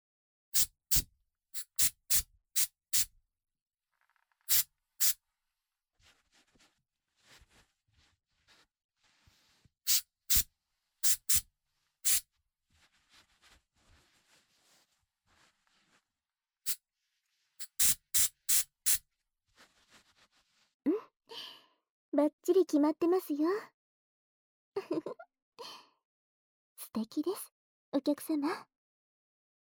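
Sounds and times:
hair spray spritzes: 0.6s - 1.0s, 1.6s - 3.1s, 4.5s - 5.2s, 9.9s - 10.4s, 11.0s - 11.4s, 17.6s - 19.0s
faint rustling: 6.0s - 9.8s, 11.7s - 16.2s, 19.5s - 20.8s
speech: 22.2s - 23.8s, 27.0s - 28.7s.

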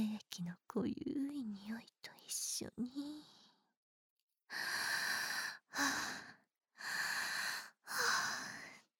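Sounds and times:
speech: 0.0s - 3.4s
woman breathing heavily, aroused: 4.5s - 8.9s.

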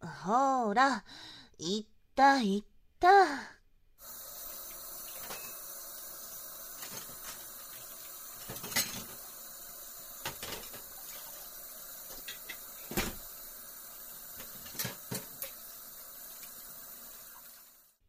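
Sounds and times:
speech: 0.2s - 3.6s
running water hissing at a sink: 4.0s - 18.0s
dishes and cutlery clattering while washing up after a meal: 5.1s - 5.6s, 6.8s - 7.5s, 8.4s - 9.2s, 10.2s - 10.9s, 14.4s - 15.6s.

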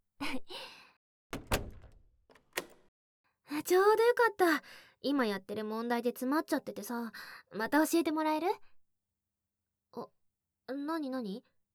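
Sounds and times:
door being opened: 1.4s - 2.9s
speech: 3.6s - 8.7s, 9.9s - 11.5s.

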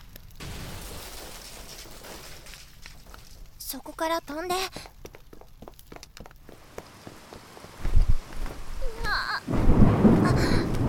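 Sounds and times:
speech: 3.7s - 4.9s
dense steady roar of heavy rain: 6.6s - 10.8s
low thunder rumbling: 8.0s - 10.8s.

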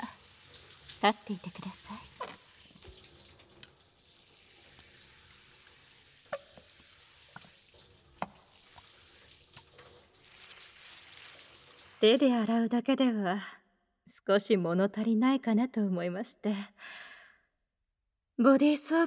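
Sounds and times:
speech: 1.0s - 2.2s, 12.0s - 13.6s, 14.3s - 17.0s, 18.4s - 19.0s
shower water spraying: 2.4s - 12.2s.

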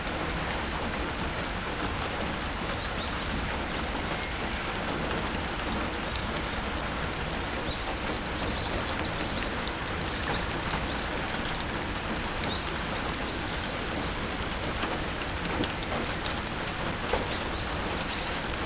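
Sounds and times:
sudden rain pattering on hard surfaces near an old wooden building: 0.0s - 18.6s
water dripping: 0.0s - 18.6s.

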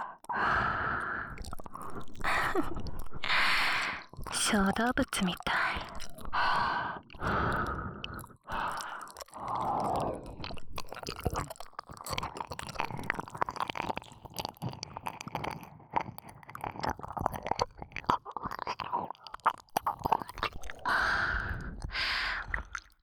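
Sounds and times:
breathy exhalations blown against the microphone: 0.0s - 4.1s, 5.8s - 10.4s, 20.8s - 22.8s
wet mouth sounds: 0.1s - 23.0s
speech: 2.6s - 2.9s, 4.5s - 5.6s.

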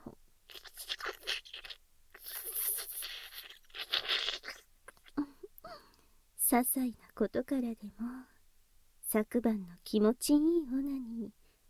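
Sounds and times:
slurping sips of tea: 0.5s - 4.6s
speech: 6.5s - 8.3s, 9.1s - 11.4s.

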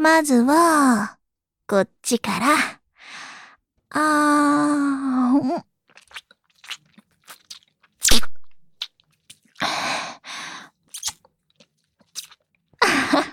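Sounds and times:
speech: 0.0s - 2.8s, 3.9s - 5.7s
wet slurping and smacking mouth sounds on the ear: 5.9s - 9.7s, 10.8s - 12.5s.

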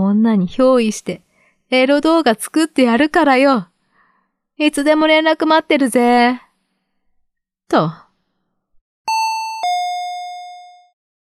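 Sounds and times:
speech: 0.2s - 3.7s, 4.6s - 6.4s, 7.7s - 8.0s
front door chime ringing a two-note ding-dong: 9.1s - 11.0s.

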